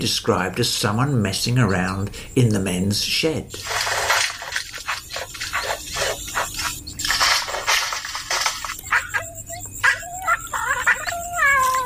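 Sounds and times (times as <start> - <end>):
speech: 0.0 - 4.1
bowerbird clicks and scratchy chatter: 3.6 - 11.8
bowerbird in a river red gum mimicking a cat's meow: 8.8 - 11.8.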